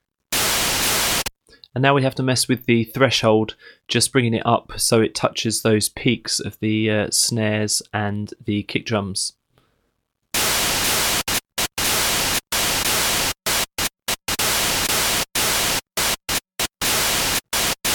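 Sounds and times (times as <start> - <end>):
synthesized white noise chopped by gating: 0.3 - 1.3, 10.4 - 17.9
speech: 1.8 - 9.4.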